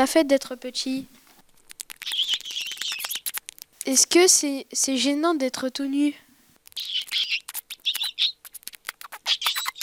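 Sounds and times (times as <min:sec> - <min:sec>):
speech: 0:00.0 - 0:01.2, 0:03.9 - 0:06.2
gerbil in a school cage squeaking and chirping: 0:01.8 - 0:03.6, 0:06.7 - 0:09.8.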